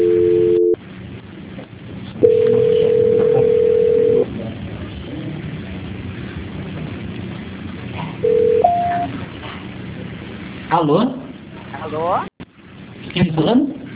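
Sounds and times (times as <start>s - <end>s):
telephone line tones during transfer of a dropped call: 0.0s - 0.8s, 2.2s - 4.2s, 8.2s - 9.1s
quiet telephone line noise: 0.0s - 10.7s
speech: 10.8s - 11.2s, 11.9s - 12.3s, 13.2s - 13.8s.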